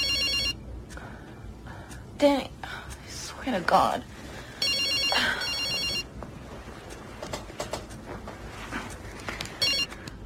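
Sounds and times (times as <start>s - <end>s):
telephone ringing with electronic trilling tone: 0.0s - 0.6s, 4.6s - 6.1s, 9.6s - 10.0s
faint clatter: 0.0s - 10.2s
speech: 2.2s - 2.6s, 3.4s - 4.1s.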